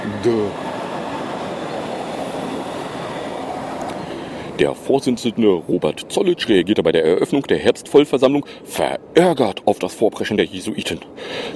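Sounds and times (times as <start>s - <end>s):
commuter train rumbling past with rolling wheels and rail noise: 0.0s - 6.7s
speech: 0.2s - 0.6s, 4.6s - 11.5s.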